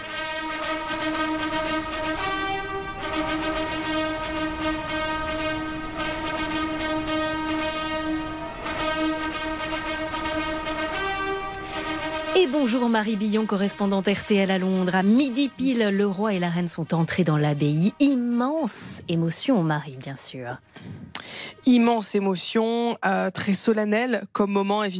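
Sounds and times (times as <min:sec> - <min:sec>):
ceremonial trumpet fanfare: 0:00.0 - 0:15.6
speech: 0:12.5 - 0:21.0, 0:21.6 - 0:24.9.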